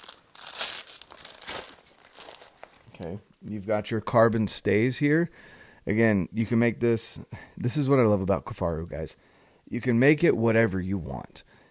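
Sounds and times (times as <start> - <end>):
Velcro strap being pulled open on a backpack: 0.0 - 3.0
speech: 3.0 - 11.5.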